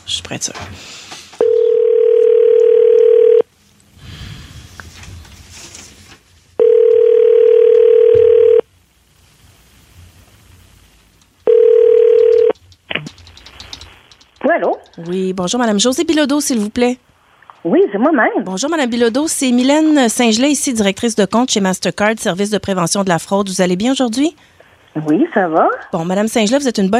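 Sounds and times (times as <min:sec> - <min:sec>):
speech: 0:00.3 - 0:01.0, 0:15.0 - 0:17.1, 0:17.7 - 0:26.9
ringback tone of an outgoing telephone call: 0:01.4 - 0:03.4, 0:06.6 - 0:08.6, 0:11.5 - 0:12.5.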